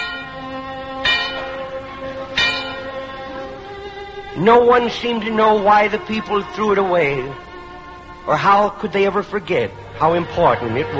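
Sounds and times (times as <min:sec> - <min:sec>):
old rusty bell clanging: 0:00.0 - 0:05.0
speech: 0:04.4 - 0:07.4, 0:08.2 - 0:10.9.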